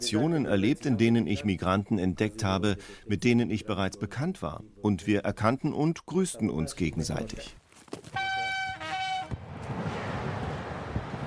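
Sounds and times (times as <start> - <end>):
speech: 0.0 - 8.2
loud train horn blaring: 8.2 - 9.4
train rushing past with a steady roar: 9.0 - 11.2.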